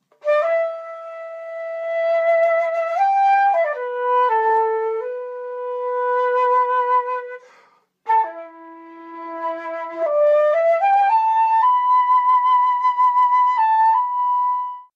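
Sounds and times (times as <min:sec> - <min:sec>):
Japanese shakuhachi flute: 0:00.1 - 0:14.9.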